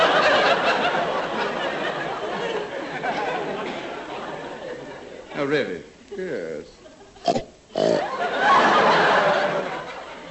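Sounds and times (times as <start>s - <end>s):
laughter: 0.0s - 5.4s, 8.0s - 10.2s
speech: 5.4s - 8.1s
person imitating a pig snorting and grunting: 7.2s - 8.1s.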